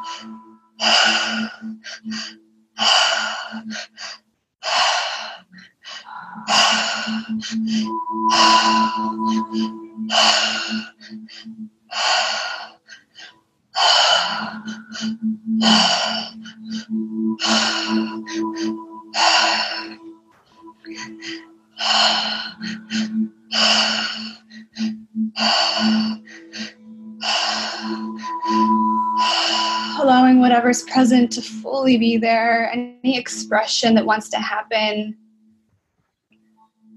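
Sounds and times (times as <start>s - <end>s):
speech: 0.0s - 4.2s, 7.4s - 10.8s, 31.2s - 35.2s
slow deep breathing in a guided breathing exercise: 0.0s - 30.0s
faint throaty hum: 0.0s - 31.5s.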